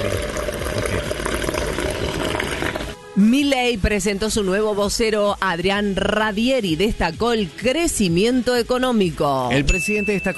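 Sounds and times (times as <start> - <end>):
hot water pouring: 0.0 - 3.0
speech: 3.2 - 10.3.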